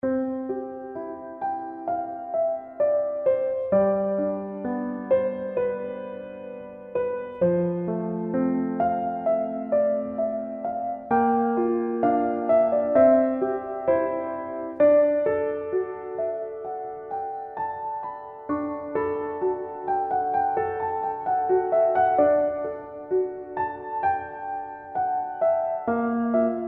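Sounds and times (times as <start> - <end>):
little piano: 0.0 - 26.6.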